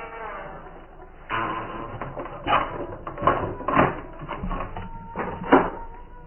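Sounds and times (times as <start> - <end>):
heavy cellar exit door creaking shut: 1.3 - 6.2.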